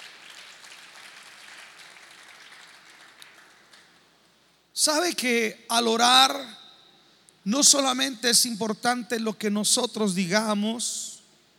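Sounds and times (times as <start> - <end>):
audience applause of many hands clapping: 0.0 - 4.0
speech: 4.8 - 6.6, 7.4 - 11.1.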